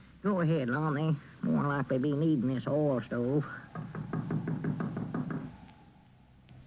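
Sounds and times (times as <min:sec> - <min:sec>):
speech: 0:00.2 - 0:04.0
light knocks on a wooden door: 0:03.7 - 0:05.6.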